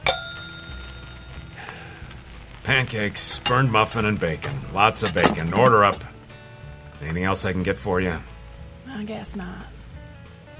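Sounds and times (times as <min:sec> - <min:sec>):
single bright bell ding: 0:00.0 - 0:01.1
speech: 0:02.7 - 0:06.1, 0:07.0 - 0:08.3, 0:08.9 - 0:09.7.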